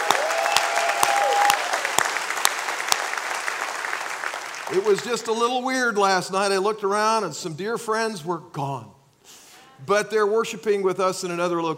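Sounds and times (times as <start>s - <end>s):
large crowd applauding: 0.0s - 5.3s
speech: 4.7s - 8.9s, 9.8s - 11.7s.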